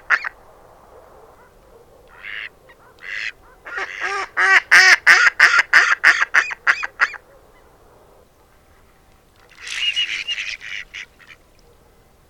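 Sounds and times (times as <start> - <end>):
Mallard quacking: 2.1 - 7.2, 9.6 - 11.4.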